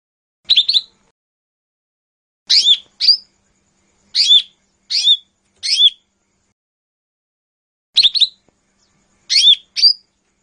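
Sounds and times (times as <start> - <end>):
lesser green leafbird song of short sharp slurred chirps: 0.5 - 1.1, 2.5 - 6.5, 8.0 - 10.4.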